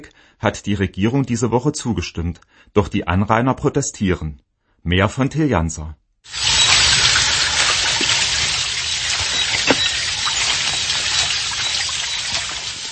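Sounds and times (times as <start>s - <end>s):
speech: 0.0s - 6.4s
stream rushing through deciduous forest and small gorges in Křivoklátsko Czech Republic: 6.3s - 12.8s
faint high chirps or squeaks: 6.4s - 12.8s.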